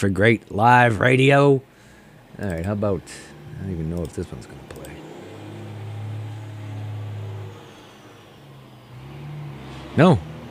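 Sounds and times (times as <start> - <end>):
speech: 0.0 - 1.7, 2.4 - 5.0, 10.0 - 10.3
truck engine driving past: 2.8 - 10.5.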